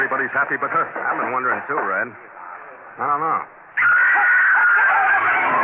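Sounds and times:
speech: 0.1s - 2.4s, 3.0s - 3.9s
woman screaming at a wedding as the groom collapses: 3.8s - 5.5s.

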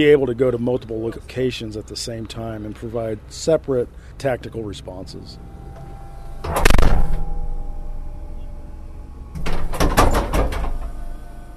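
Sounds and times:
speech: 0.0s - 5.5s, 6.4s - 7.2s
armored vehicle hydraulic back door humming: 5.0s - 11.5s
rattling metallic thuds of armored vehicle back door latching: 6.4s - 8.0s, 9.3s - 11.0s
loud clunk of armored vehicle hydraulic back door: 6.4s - 8.1s, 9.3s - 11.0s.

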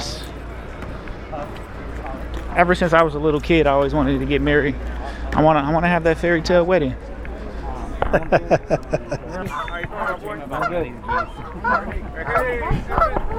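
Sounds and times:
steady noise: 0.0s - 13.3s
speech: 2.6s - 7.1s, 8.1s - 13.3s
laughter: 7.5s - 13.3s
flock of geese honking: 9.5s - 13.3s.

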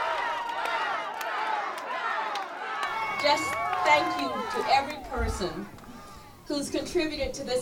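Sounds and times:
sharp claps: 0.0s - 5.0s
large crowd chanting a name in unison: 0.0s - 5.7s
speech: 3.2s - 5.8s, 6.5s - 7.6s.

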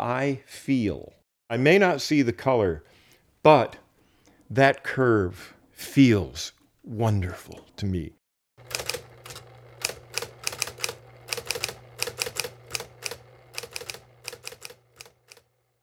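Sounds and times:
speech: 0.0s - 3.8s, 4.5s - 8.8s
keys striking on a manual typewriter: 8.6s - 15.5s.

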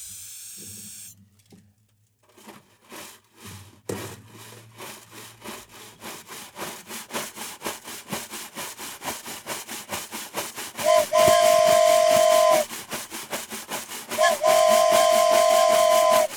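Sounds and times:
hissing steam: 0.0s - 1.1s, 10.7s - 16.3s
steam locomotive chuffing: 6.9s - 16.3s
steam locomotive whistle blasts: 10.8s - 12.7s, 14.2s - 16.3s.

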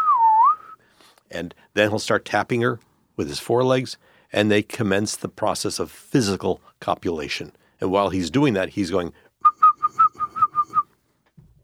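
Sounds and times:
person imitating a male cicada's second courtship call: 0.0s - 0.8s, 9.4s - 10.9s
speech: 1.3s - 9.2s.

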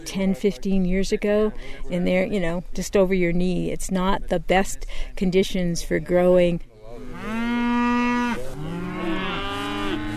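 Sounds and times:
speech: 0.1s - 7.3s
cows mooing: 7.0s - 10.1s.

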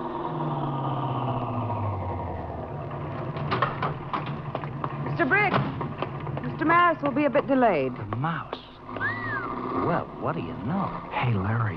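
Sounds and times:
car driving up and arriving: 0.0s - 11.7s
sharp clattering knocks: 3.1s - 9.1s
speech: 5.2s - 5.8s, 6.6s - 8.6s, 9.9s - 11.7s.

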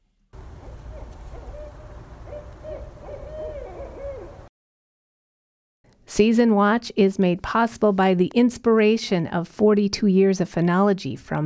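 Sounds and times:
steady low outdoor rumble: 0.1s - 4.5s
owl hooting: 0.6s - 4.5s
speech: 6.1s - 11.4s.

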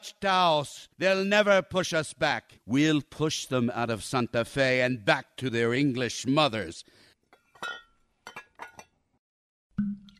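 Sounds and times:
speech: 0.0s - 7.0s, 7.6s - 7.8s
wine glasses clinking: 7.6s - 8.9s.

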